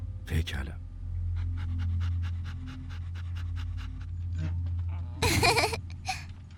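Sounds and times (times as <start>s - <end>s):
low hum: 0.0s - 6.5s
speech: 0.3s - 0.9s
dog panting: 1.4s - 4.5s
laughter: 5.2s - 5.8s.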